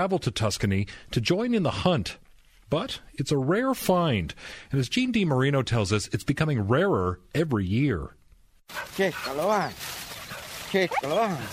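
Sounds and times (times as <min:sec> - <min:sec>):
speech: 0:00.0 - 0:10.0, 0:10.7 - 0:11.5
truffle-hunting dogs whimpering and barking in woods: 0:08.7 - 0:11.5.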